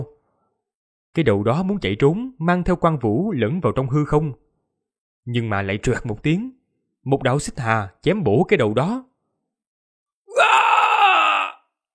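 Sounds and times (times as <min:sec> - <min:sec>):
speech: 0:01.2 - 0:04.4, 0:05.2 - 0:09.1
man screaming in a fantasy battle scene: 0:10.3 - 0:11.7.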